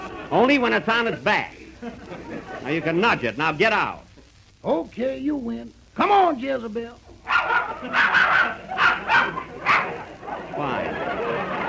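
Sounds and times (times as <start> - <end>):
laughter: 0.0 - 3.2, 7.4 - 11.6
speech: 0.3 - 7.0, 7.8 - 8.6
dog barking in sharp yaps: 7.3 - 10.0.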